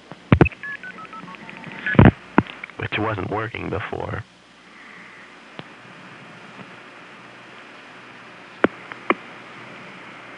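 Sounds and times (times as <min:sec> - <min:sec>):
telephone DTMF keypad tones dialing a number on a phone line: 0:00.4 - 0:02.0
speech: 0:03.0 - 0:04.3.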